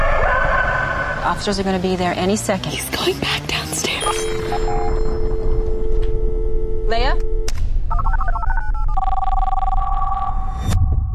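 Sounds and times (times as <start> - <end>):
low rumbling background: 0.0 - 11.1
speech: 1.3 - 4.9, 6.9 - 7.3
telephone ringing with electronic trill and two-tone ring: 3.9 - 10.5.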